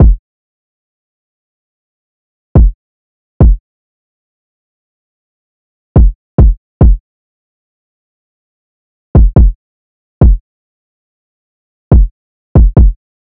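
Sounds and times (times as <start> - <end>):
drill drum loop: 0.0 - 0.2, 6.0 - 7.0, 9.2 - 9.6, 11.9 - 13.0
kick drum: 0.0 - 0.2, 2.6 - 2.8, 3.4 - 3.6, 6.0 - 7.0, 9.2 - 9.6, 10.2 - 10.4, 11.9 - 13.0.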